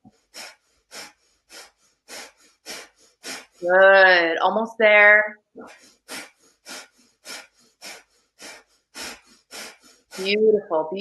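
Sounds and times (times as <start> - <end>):
rhythmic forceful breathing during a breathwork exercise: 0.0 - 4.2, 5.6 - 11.0
speech: 3.6 - 5.8, 10.2 - 11.0.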